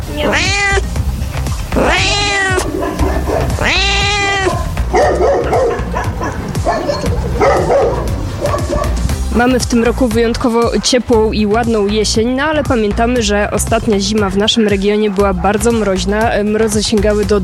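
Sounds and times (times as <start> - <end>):
cat meowing at an animal shelter: 0.0 - 0.9, 1.7 - 8.9
dogs barking and yelping at an animal shelter: 0.1 - 0.9, 1.5 - 9.3, 14.2 - 16.2
speech: 9.4 - 17.4.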